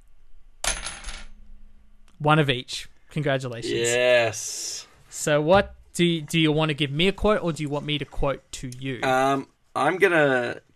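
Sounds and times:
two tossed coins landing on a hard surface: 0:00.6 - 0:01.3
speech: 0:02.2 - 0:10.7.

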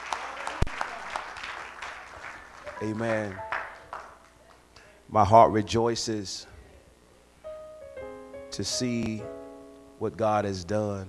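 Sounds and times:
audience applause: 0:00.0 - 0:04.7
sharp individual claps: 0:00.0 - 0:04.9
speech: 0:02.8 - 0:03.6, 0:05.1 - 0:06.5, 0:08.6 - 0:09.4, 0:10.0 - 0:11.0.

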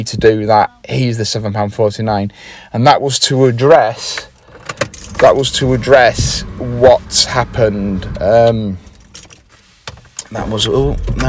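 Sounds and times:
speech: 0:00.0 - 0:08.8, 0:10.3 - 0:11.2
car engine switched off: 0:04.4 - 0:09.2, 0:10.4 - 0:11.2
car keys jangling as a car is switched off in a countryside lay-by: 0:04.6 - 0:05.4, 0:08.9 - 0:09.5.

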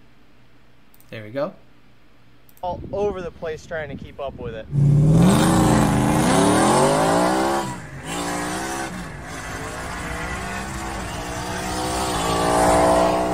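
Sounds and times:
speech: 0:01.1 - 0:01.7, 0:02.6 - 0:05.7
race car engine revving inside the cockpit: 0:04.7 - 0:13.3.

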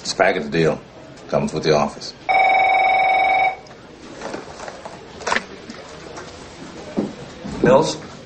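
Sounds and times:
speech: 0:00.2 - 0:02.4, 0:07.6 - 0:08.1
telephone ringing with electronic tone: 0:02.3 - 0:03.7.

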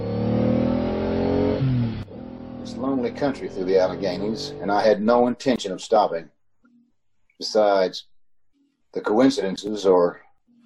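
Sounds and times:
car engine revving hard as the accelerator is floored: 0:00.0 - 0:05.2
speech: 0:02.8 - 0:06.4, 0:07.4 - 0:08.1, 0:08.9 - 0:10.2.

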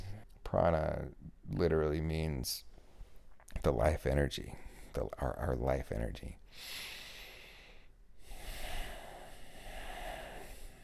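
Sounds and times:
speech: 0:00.5 - 0:02.7, 0:03.6 - 0:07.0
person taking a quiet airy breath: 0:06.5 - 0:10.8.

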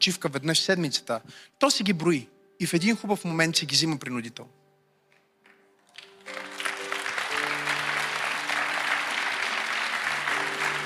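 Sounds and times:
speech: 0:00.0 - 0:04.6
audience applause: 0:05.8 - 0:10.8.

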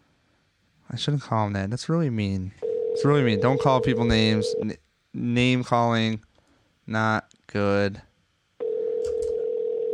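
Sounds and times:
speech: 0:00.9 - 0:06.3, 0:06.9 - 0:08.1
telephone dial tone: 0:02.6 - 0:03.1, 0:08.6 - 0:09.9.

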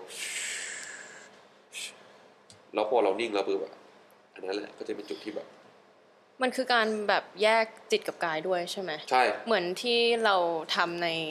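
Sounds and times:
long breathy exhale: 0:00.0 - 0:01.9
sharp intake of breath through the nose: 0:00.0 - 0:02.3
speech: 0:02.7 - 0:03.8, 0:04.4 - 0:05.6, 0:06.4 - 0:11.2.

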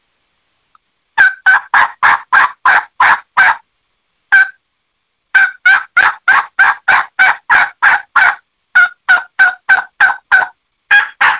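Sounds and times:
turkey calls imitating Eastern and Osceola wild turkey hen yelps: 0:01.2 - 0:03.6, 0:04.3 - 0:04.6, 0:05.4 - 0:11.3.

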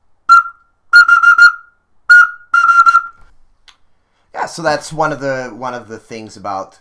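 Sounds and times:
traditional Russian whistle toy being blown: 0:00.3 - 0:03.3
speech: 0:04.5 - 0:06.7.

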